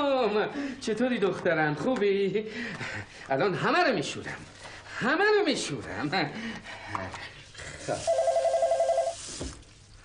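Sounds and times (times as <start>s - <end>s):
speech: 0.3s - 7.3s, 7.9s - 8.3s
telephone ringing with trilling electronic pulses: 8.0s - 9.2s.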